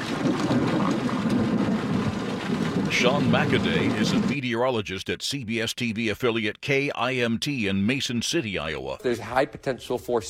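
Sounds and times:
tornado wind and debris hitting a storm chaser's vehicle in Adams City, Iowa: 0.0s - 4.2s
speech: 3.0s - 10.2s.

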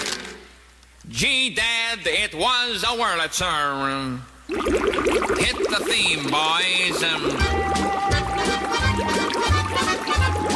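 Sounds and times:
speech: 1.1s - 7.9s
champagne pouring and fizzing: 4.5s - 10.5s
low rhythmic thumping pulses: 7.0s - 10.5s.

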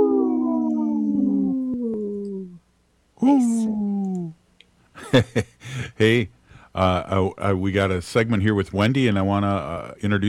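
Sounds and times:
wolves howling: 0.0s - 2.6s
speech: 3.2s - 3.9s, 5.1s - 10.2s.

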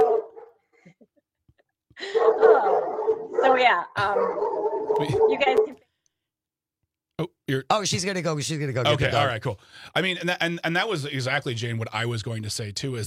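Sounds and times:
dog barking and yowling: 0.0s - 0.6s, 2.0s - 5.8s
speech: 3.4s - 5.8s, 7.2s - 13.0s.

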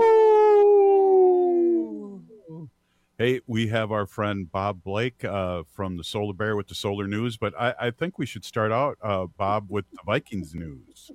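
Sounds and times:
wolf howling: 0.0s - 2.7s
speech: 3.2s - 11.1s.

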